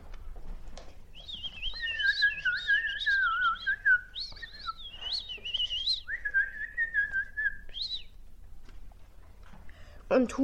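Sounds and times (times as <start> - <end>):
birds singing in a forest: 1.2 - 8.2
speech: 10.1 - 10.4.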